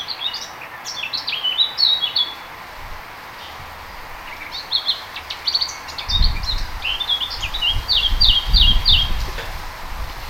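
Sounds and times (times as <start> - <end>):
Eurasian blackcap song in fast varied warbling bursts with fluty notes: 0.0 - 9.7
low rumbling noise: 2.4 - 10.2.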